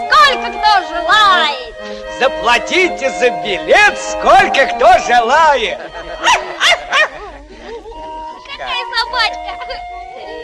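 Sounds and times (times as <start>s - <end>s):
speech: 0.0s - 6.8s
laughter: 4.3s - 8.5s
dog yapping: 6.2s - 7.1s.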